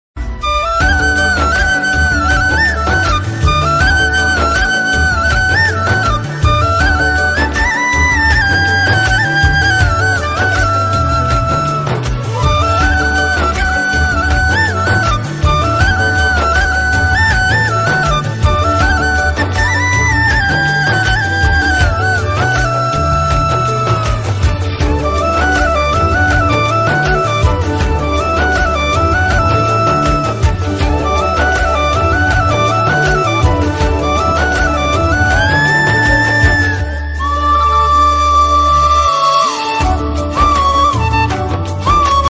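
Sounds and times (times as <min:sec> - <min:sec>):
sad flute ringtone: 0:00.4 - 0:42.2.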